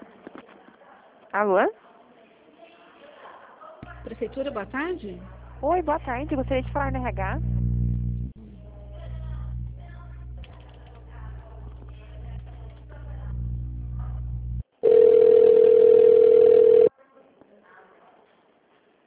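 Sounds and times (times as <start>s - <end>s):
speech: 1.3s - 1.8s, 4.1s - 7.5s
low humming telephone line noise: 3.8s - 16.9s
telephone line tone after a dropped call: 14.8s - 16.9s.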